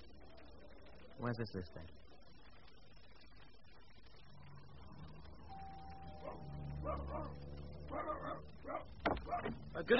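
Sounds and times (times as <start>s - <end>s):
low steady hum: 0.0s - 9.9s
speech: 1.2s - 2.1s, 9.8s - 9.9s
dog barking and yapping: 6.2s - 9.6s.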